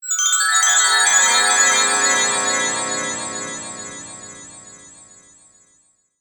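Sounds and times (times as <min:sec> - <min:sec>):
long fairy magic spell being cast: 0:00.9 - 0:05.2.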